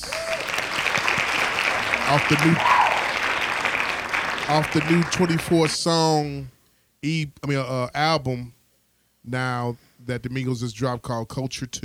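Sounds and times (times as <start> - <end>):
faint voices and cheers: 0.0 - 0.6, 2.0 - 3.2
loud dense hand clapping from many people: 0.0 - 5.8
speech: 2.1 - 2.8, 4.5 - 8.6, 9.2 - 11.8.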